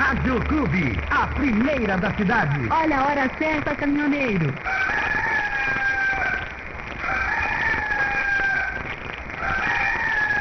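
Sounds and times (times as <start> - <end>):
speech: 0.1 - 5.0
rooster crowing: 4.6 - 10.3.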